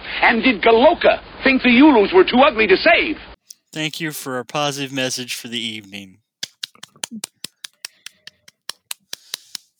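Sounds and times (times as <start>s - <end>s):
speech: 0.2s - 6.2s, 7.1s - 7.3s
soft slow hand clapping: 5.6s - 9.7s.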